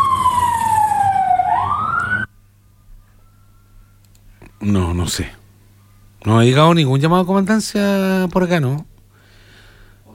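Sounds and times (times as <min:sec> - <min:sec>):
fire truck siren wailing: 0:00.0 - 0:02.3
speech: 0:04.7 - 0:05.4, 0:06.2 - 0:08.9.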